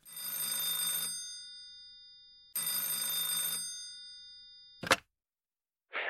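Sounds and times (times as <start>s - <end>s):
old-style telephone bell ringing: 0.0s - 4.8s.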